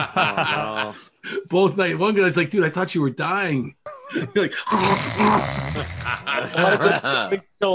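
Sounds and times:
laughter: 0.0s - 1.4s, 4.1s - 7.7s
speech: 0.0s - 7.7s
voice imitating a wet gargling snore: 4.6s - 6.4s.

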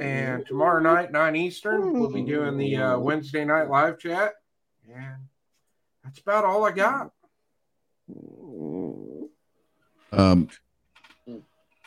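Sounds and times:
speech: 0.0s - 5.3s, 6.0s - 7.2s, 10.1s - 10.6s
dog low wavering grumble: 8.1s - 9.4s.

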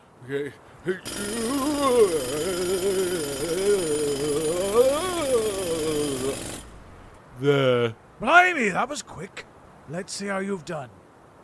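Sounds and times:
speech: 0.3s - 4.0s, 7.4s - 11.0s
auger drilling a hole through hard rock: 1.0s - 7.2s.

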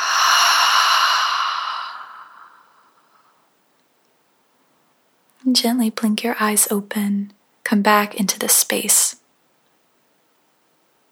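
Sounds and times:
breathy exhale during a guided relaxation: 0.0s - 3.4s
speech: 5.5s - 9.2s.

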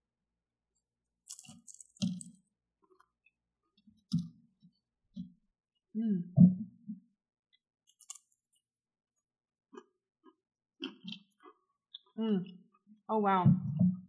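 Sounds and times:
crisp cracker crunches: 1.2s - 2.4s, 7.9s - 8.7s
person chewing crackers topped with pepper jack cheese: 1.2s - 3.0s, 7.9s - 8.8s, 9.7s - 12.2s
speech: 6.0s - 6.6s, 12.2s - 13.6s.

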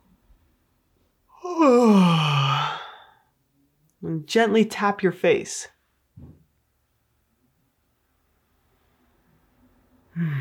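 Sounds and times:
long exaggerated voiced yawn: 1.3s - 3.3s, 10.1s - 10.3s
speech: 4.1s - 5.8s.

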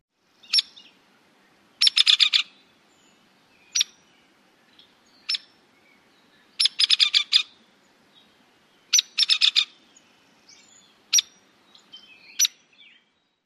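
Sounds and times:
hairy woodpecker rattle call: 1.8s - 2.5s, 5.2s - 5.5s, 6.6s - 7.6s, 8.9s - 9.8s, 11.1s - 11.4s.

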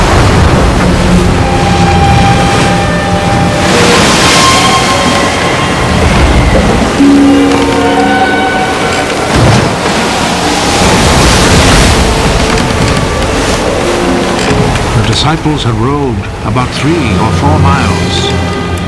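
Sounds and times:
lake waves surging and crashing: 0.0s - 18.8s
strong wind roaring over a lake at night: 0.0s - 18.8s
faint creaking tones: 3.3s - 15.5s
speech: 15.2s - 18.5s.

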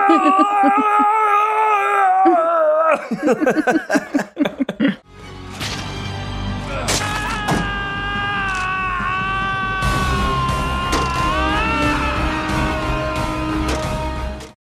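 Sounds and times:
laughter: 0.0s - 1.3s, 2.2s - 5.0s
person imitating a scream of pain: 0.0s - 3.1s, 6.7s - 14.1s.

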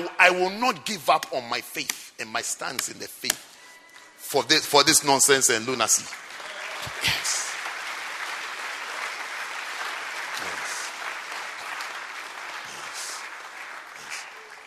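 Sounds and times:
speech: 0.2s - 3.5s, 4.3s - 7.5s
audience clapping weakly: 4.8s - 14.6s.

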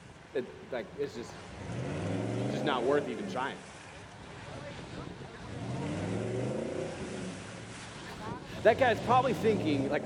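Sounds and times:
speech: 0.4s - 2.0s, 2.6s - 3.8s, 8.6s - 10.0s
car engine revving hard while stuck in mud: 1.4s - 3.7s, 4.6s - 10.0s
faint murmuring: 2.5s - 10.0s.

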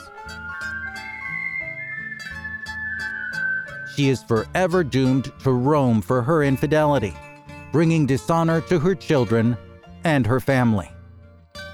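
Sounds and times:
eerie human whistle holding a high note: 0.0s - 4.5s
dark musical backdrop: 0.0s - 5.6s
speech: 4.0s - 11.0s.

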